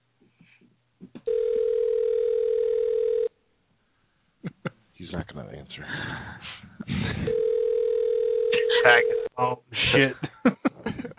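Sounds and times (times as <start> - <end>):
telephone dial tone while a call is being placed: 1.3 - 3.3, 7.3 - 9.3
speech: 5.2 - 7.5, 8.8 - 10.6.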